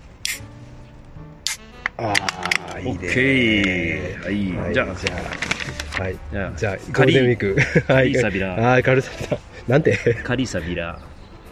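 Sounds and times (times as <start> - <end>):
cans of lemon sour being cracked open: 0.2 - 0.5, 1.5 - 2.8
laughter: 2.0 - 5.2, 7.0 - 10.9
speech: 2.0 - 11.1.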